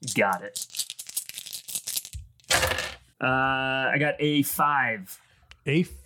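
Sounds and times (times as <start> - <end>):
speech: 0.2 - 0.8, 3.2 - 6.0
dice clattering across a surface: 0.6 - 3.0.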